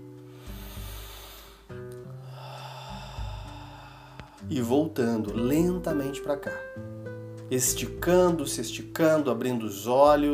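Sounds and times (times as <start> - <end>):
slow deep breath in and out: 0.2 - 4.5
speech: 4.5 - 6.9, 7.5 - 10.3.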